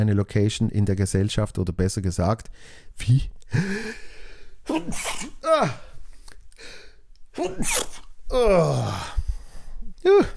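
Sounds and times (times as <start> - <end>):
speech: 0.0 - 4.0, 4.7 - 5.8, 7.4 - 9.2, 10.0 - 10.3
person sneezing, partly stifled: 4.6 - 6.0, 7.3 - 9.1.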